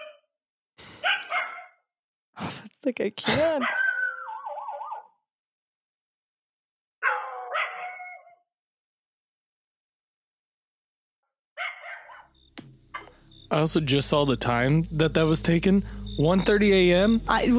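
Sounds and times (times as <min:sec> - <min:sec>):
dogs barking at night: 0:01.0 - 0:01.8, 0:03.6 - 0:05.1, 0:07.0 - 0:08.4, 0:11.6 - 0:12.3
speech: 0:02.4 - 0:03.8, 0:13.5 - 0:17.5.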